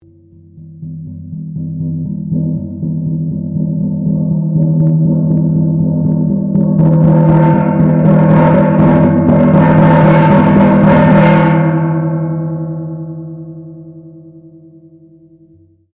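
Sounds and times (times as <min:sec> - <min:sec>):
20 inch Indonesian nipple gong modern copy strikes: 0:00.0 - 0:15.7.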